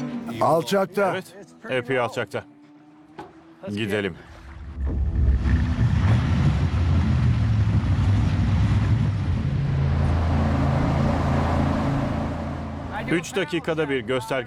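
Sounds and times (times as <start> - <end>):
speech: 0.4 - 2.5, 3.6 - 4.3, 13.1 - 14.4
heavy engine running during a river crossing: 4.6 - 14.1.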